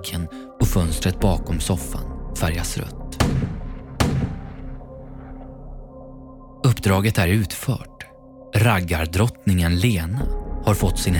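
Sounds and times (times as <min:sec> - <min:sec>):
speech: 0:00.0 - 0:03.0, 0:06.8 - 0:07.9, 0:08.6 - 0:11.1
single gunshot fired indoors: 0:03.2 - 0:04.8.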